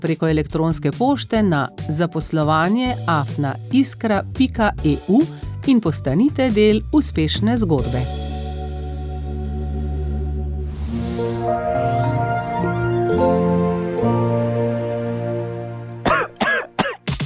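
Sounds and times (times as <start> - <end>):
speech: 0.0 - 8.3
sustained musical chord: 8.2 - 16.4
throat-clearing bursts: 16.0 - 17.0
harsh coughs: 16.0 - 17.1.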